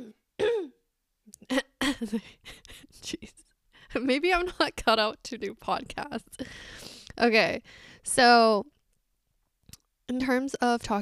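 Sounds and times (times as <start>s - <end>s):
person clearing throat: 0.0s - 0.8s
speech: 1.5s - 3.3s, 4.0s - 8.8s, 10.1s - 11.0s.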